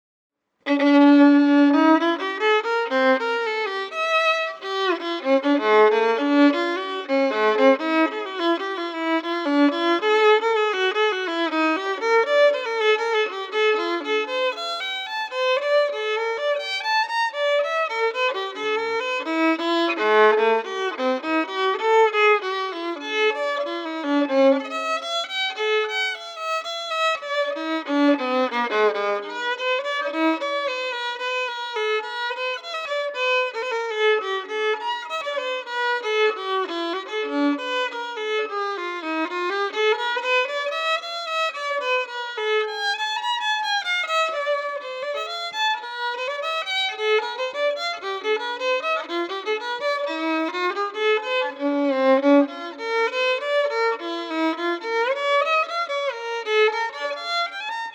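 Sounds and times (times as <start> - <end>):
violin in four-four time: 0.6 - 57.9.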